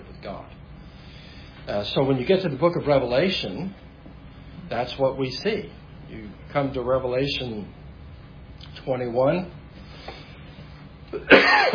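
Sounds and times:
speech: 1.6s - 3.8s, 4.7s - 7.8s, 8.8s - 9.6s, 11.1s - 11.7s
person coughing: 11.1s - 11.7s.

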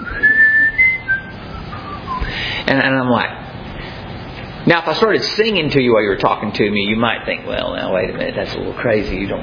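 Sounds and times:
man whistling an idle melody: 0.0s - 2.4s
speech: 2.7s - 3.4s, 4.6s - 9.4s.

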